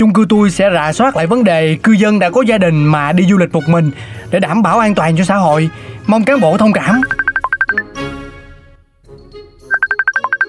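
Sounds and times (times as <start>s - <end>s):
speech: 0.0s - 7.9s
mobile phone ringtone for an incoming call: 7.0s - 8.0s, 9.7s - 10.4s.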